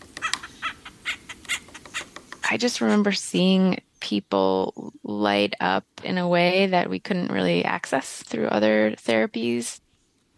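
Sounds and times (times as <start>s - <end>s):
acorn woodpecker calling: 0.0s - 4.0s
speech: 2.5s - 9.8s.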